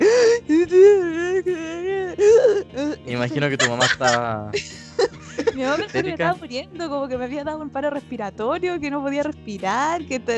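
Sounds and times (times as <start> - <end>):
person imitating hiccuping sobs while crying: 0.0 - 6.4
laughter: 0.0 - 7.4
speech: 3.1 - 10.3.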